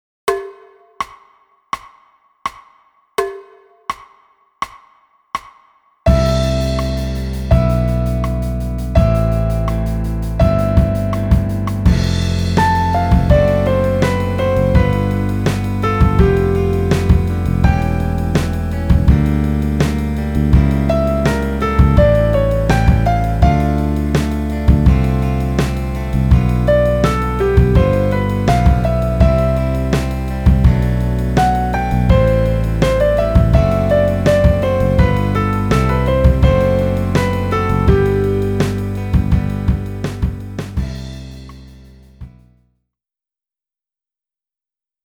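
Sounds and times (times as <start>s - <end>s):
air pop: 6.1s - 41.6s.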